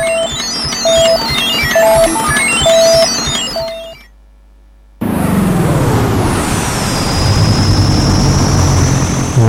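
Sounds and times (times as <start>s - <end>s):
rhythmic electronic beeping: 0.0s - 4.2s
airplane landing sound effect, engine roar with high whine: 5.0s - 9.4s.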